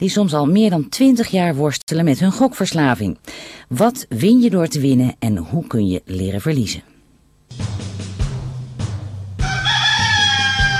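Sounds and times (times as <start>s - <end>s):
speech: 0.0s - 6.9s
rooster crowing: 9.4s - 10.7s.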